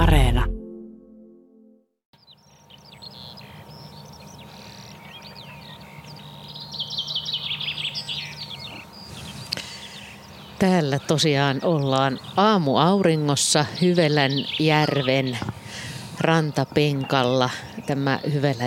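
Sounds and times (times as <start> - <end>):
bright rapid bird trill: 2.2 - 15.6
birds singing and chirping in the morning on the shore embankment of Lake Hyvelä: 2.2 - 18.6
steady hum of ambient noise: 2.4 - 18.6
speech: 10.6 - 15.6, 16.2 - 18.6.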